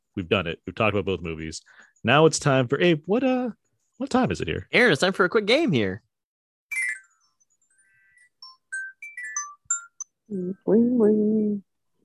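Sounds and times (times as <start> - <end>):
speech: 0.2 - 6.0, 10.3 - 11.7
satellite phone ringtone: 6.7 - 10.2.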